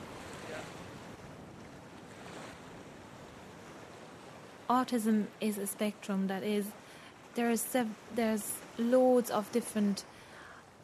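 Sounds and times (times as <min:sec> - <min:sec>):
gusty wind buffeting the microphone: 0:00.0 - 0:05.3
ocean surf crashing onto the beach at Banna: 0:00.0 - 0:10.8
speech: 0:04.7 - 0:06.8, 0:07.4 - 0:10.2.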